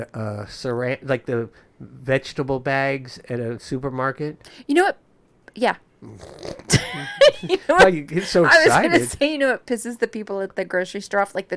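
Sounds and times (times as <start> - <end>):
speech: 0.0 - 5.0, 5.6 - 11.5
voice imitating a zipper closing: 6.0 - 7.0, 8.5 - 9.2
laughter: 6.6 - 9.2.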